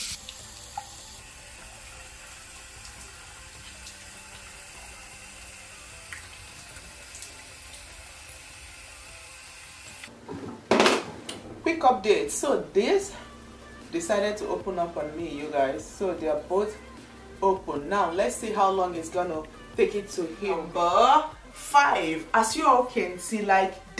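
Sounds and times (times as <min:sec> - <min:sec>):
water running from a tap into a sink: 0:00.0 - 0:10.1
speech: 0:11.7 - 0:13.2, 0:13.9 - 0:23.9.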